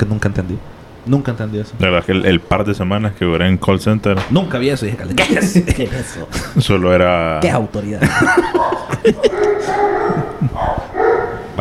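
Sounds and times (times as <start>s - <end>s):
speech: 0.0s - 9.7s
laughter: 5.1s - 6.6s, 8.0s - 10.7s
dogs barking: 8.2s - 11.5s.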